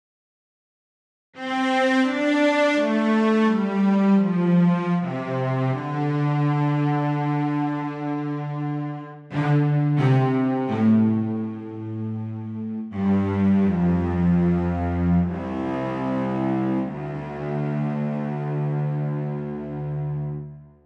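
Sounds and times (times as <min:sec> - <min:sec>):
cellos playing legato: 0:01.4 - 0:20.7.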